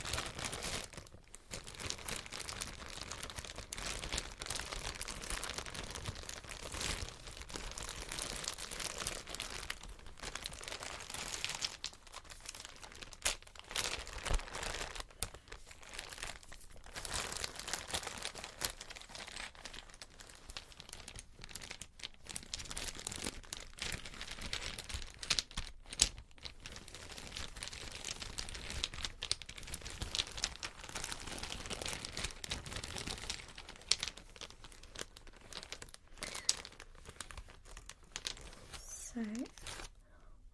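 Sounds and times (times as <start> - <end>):
plastic bag holding small chess pieces crinkling: 0.0 - 40.0
speech: 39.2 - 39.5.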